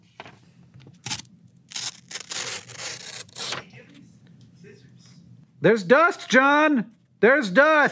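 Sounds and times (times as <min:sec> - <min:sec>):
razor blade cutting through paper: 0:01.0 - 0:03.6
speech: 0:05.6 - 0:07.8.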